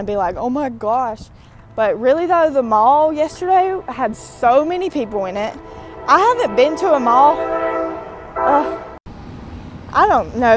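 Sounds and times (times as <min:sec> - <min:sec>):
speech: 0:00.0 - 0:07.6, 0:08.4 - 0:08.8, 0:10.0 - 0:10.5
rumble of a passing train: 0:00.0 - 0:10.5
train horn: 0:01.6 - 0:09.0.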